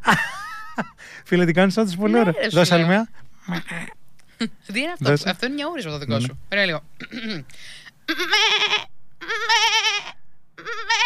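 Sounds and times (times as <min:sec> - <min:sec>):
speech: 0:00.1 - 0:08.9
person imitating a young goat kid bleating: 0:03.5 - 0:04.0, 0:07.0 - 0:07.5, 0:08.1 - 0:11.0.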